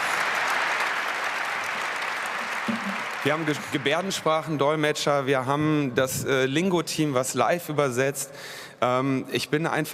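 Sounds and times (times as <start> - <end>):
sizable audience applause: 0.0 - 4.6
speech: 2.7 - 9.9.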